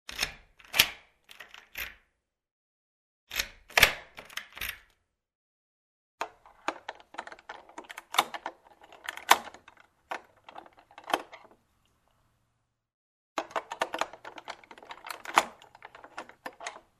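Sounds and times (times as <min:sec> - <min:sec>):
key put in a lock: 0:00.1 - 0:02.0, 0:03.3 - 0:05.0, 0:06.4 - 0:11.6, 0:13.4 - 0:16.9.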